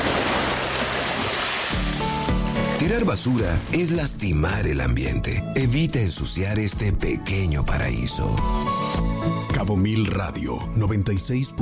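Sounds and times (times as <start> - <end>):
ocean waves breaking on shore: 0.0 - 4.0
speech: 2.8 - 11.6.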